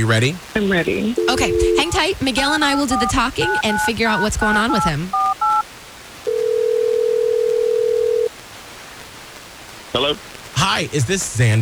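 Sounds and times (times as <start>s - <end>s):
speech: 0.0s - 5.2s, 10.0s - 11.6s
ringback tone from an outgoing phone call: 1.2s - 2.1s, 2.9s - 5.6s, 6.3s - 8.3s.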